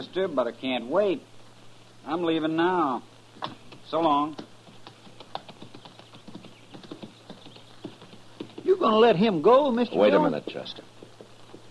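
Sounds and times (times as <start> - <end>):
speech: 0.0 - 1.4, 2.0 - 4.5, 8.8 - 10.9
horse hooves clip-clopping with a rider: 3.4 - 9.1, 10.3 - 11.7.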